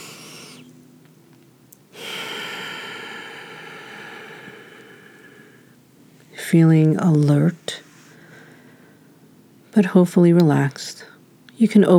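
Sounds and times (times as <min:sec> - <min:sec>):
energizing breaths during a breath meditation: 0:00.0 - 0:00.8, 0:01.9 - 0:06.4, 0:07.8 - 0:09.3
speech: 0:06.5 - 0:07.8, 0:09.8 - 0:11.9.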